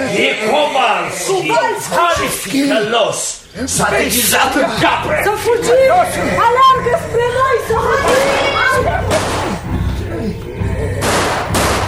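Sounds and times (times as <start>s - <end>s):
laughter: 0.0s - 11.2s
voices: 0.0s - 11.8s
speech: 0.1s - 9.0s
hunter's gunshots: 9.0s - 9.7s, 11.0s - 11.8s.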